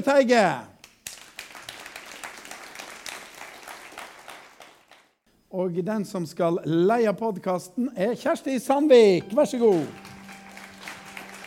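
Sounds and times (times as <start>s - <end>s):
speech: 0.0s - 0.7s, 5.5s - 10.1s
audience applauding: 1.0s - 5.1s, 9.2s - 11.4s.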